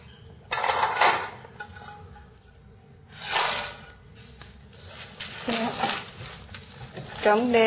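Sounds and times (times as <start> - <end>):
dumpling filling squishing and scraping into a mixing bowl: 3.2 - 7.6.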